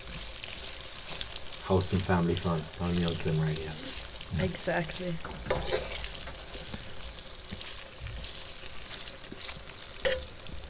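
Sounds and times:
aubergine slices frying in a pan: 0.0s - 10.6s
oil popping and crackling in a frying pan: 0.0s - 10.6s
speech: 1.7s - 6.1s.

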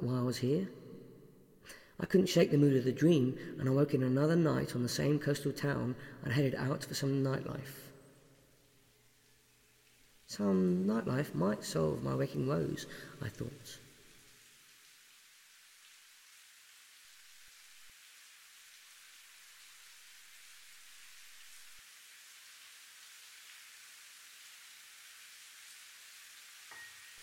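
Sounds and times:
speech: 0.0s - 0.8s, 1.7s - 7.9s, 10.3s - 13.8s
heavy steady rain downpour: 8.6s - 27.2s.

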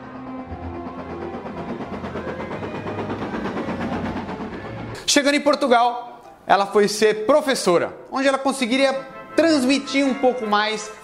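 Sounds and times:
train rolling with rumbling and rhythmic rattling: 0.0s - 6.0s
speech: 5.1s - 11.0s.

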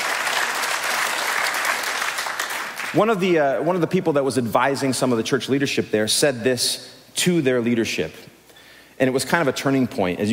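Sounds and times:
large church audience applauding: 0.0s - 3.0s
speech: 2.9s - 8.3s, 9.0s - 10.3s.

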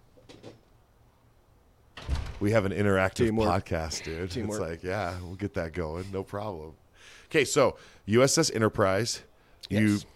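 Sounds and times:
two quick soft knocks of a door being pushed shut: 2.0s - 2.6s
speech: 2.4s - 10.1s.

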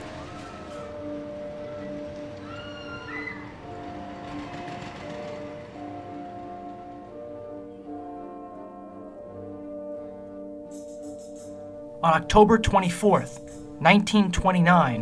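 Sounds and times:
subway train metallic wheel squeals: 0.0s - 5.8s
subway train rumbling along rails: 0.0s - 9.9s
speech: 12.0s - 15.0s.

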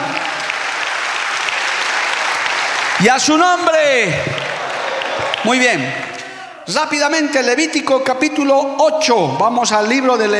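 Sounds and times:
audience applauding: 0.0s - 6.5s
speech: 3.0s - 4.5s, 5.4s - 6.1s, 6.7s - 10.3s.

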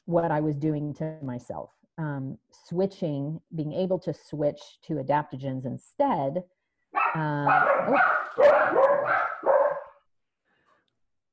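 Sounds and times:
speech: 0.1s - 9.3s
puppies barking and yipping: 7.0s - 10.0s.

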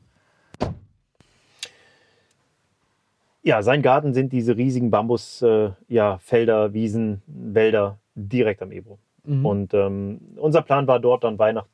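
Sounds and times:
door pushed shut with a solid thud: 0.6s - 1.0s
speech: 3.4s - 11.7s.

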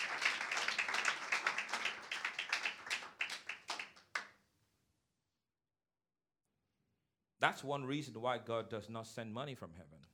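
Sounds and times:
church congregation applauding during a sermon: 0.0s - 4.3s
speech: 7.4s - 10.1s.

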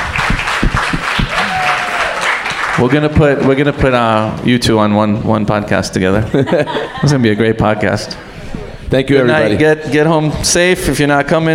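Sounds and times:
audience applause: 0.0s - 3.4s
speech: 2.8s - 8.3s, 8.9s - 11.5s
laughter: 6.2s - 8.0s.

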